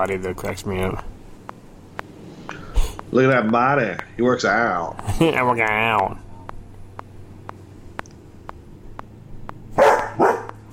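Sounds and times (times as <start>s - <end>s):
speech: 0.0s - 1.2s, 3.1s - 6.2s
faint clicks or taps: 0.4s - 3.6s, 5.7s - 10.7s
dog barking: 9.8s - 10.6s.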